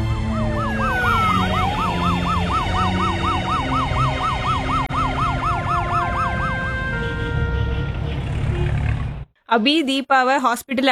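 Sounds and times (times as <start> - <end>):
ambulance siren called to a road accident: 0.0 - 8.6
road traffic rumble: 0.0 - 9.3
speech: 9.5 - 10.9.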